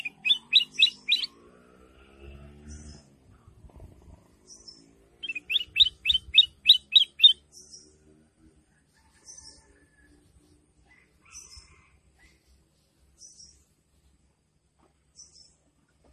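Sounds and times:
sooty-headed bulbul song: 0.0s - 1.4s, 5.2s - 7.5s.

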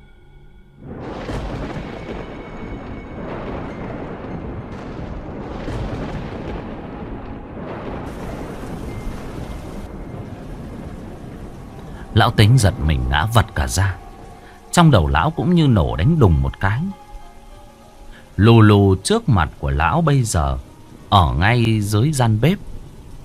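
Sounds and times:
thunder from a lightning strike rumbling: 0.8s - 23.2s
speech: 12.2s - 14.0s, 14.8s - 17.0s, 18.4s - 22.7s.

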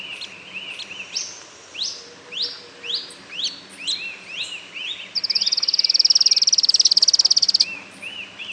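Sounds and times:
streak-capped antwren song, high fast buzzy trill: 0.0s - 8.4s
other birds' arched whistles and sharp high notes: 5.2s - 7.7s.

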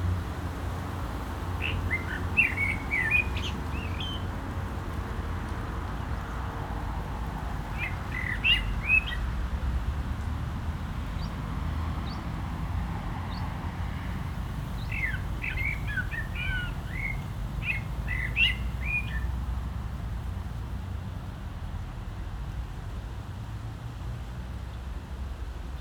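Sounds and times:
cars on a nearby road rumbling: 0.0s - 25.8s
common blackbird singing in a barranco at Agaete, Las Palmas, Spain: 1.6s - 4.2s, 7.7s - 9.2s, 14.8s - 19.3s.

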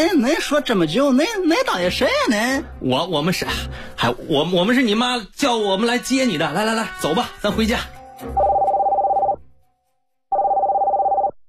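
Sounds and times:
speech: 0.0s - 8.5s
telephone ringing with rapid trilling electronic tone: 8.4s - 9.4s, 10.3s - 11.4s.

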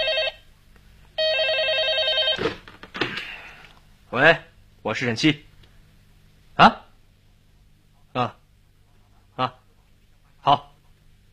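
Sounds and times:
office telephone in a criminal investigation department ringing electronically: 0.0s - 0.4s, 1.2s - 2.6s
speech: 4.2s - 5.5s, 6.6s - 6.8s, 8.2s - 8.4s, 9.4s - 9.6s, 10.4s - 10.6s.

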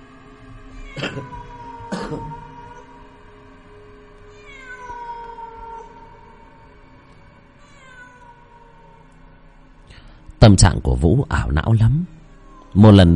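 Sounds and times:
stray cat meowing: 0.7s - 3.1s, 4.3s - 6.3s, 7.6s - 9.1s, 12.4s - 12.8s
speech: 1.0s - 1.4s, 2.1s - 2.4s, 10.5s - 13.1s.

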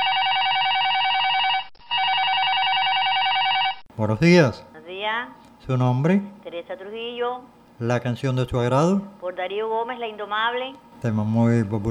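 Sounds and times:
telephone ringing with an incoming call in a radio studio: 0.0s - 3.8s
speech: 4.0s - 11.8s.

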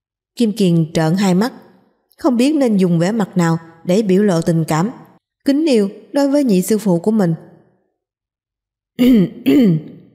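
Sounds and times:
speech: 0.4s - 1.6s, 2.2s - 7.5s, 9.0s - 9.9s
person dry throat clearing: 9.0s - 10.1s.

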